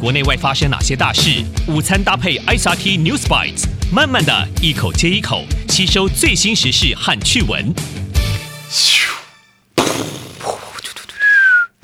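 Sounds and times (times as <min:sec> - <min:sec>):
speech: 0:00.0 - 0:08.0, 0:08.7 - 0:09.2
crackling firework bursts: 0:09.2 - 0:11.8
firework bang: 0:09.8 - 0:11.0
whistling fireworks: 0:09.8 - 0:11.7.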